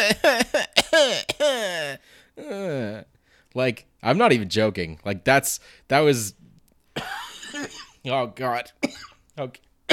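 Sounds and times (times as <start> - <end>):
voice imitating coughing with whiny bursts: 0.0 - 2.9, 7.0 - 8.0, 8.8 - 9.2
speech: 0.1 - 0.4, 3.6 - 6.4, 7.0 - 9.9.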